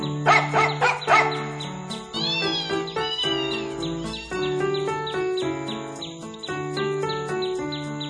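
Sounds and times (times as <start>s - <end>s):
bouncy musical backing: 0.0s - 8.0s
loud bark-like yelps: 0.2s - 1.7s, 2.4s - 4.5s
brief gliding meow-like cries: 2.1s - 4.6s.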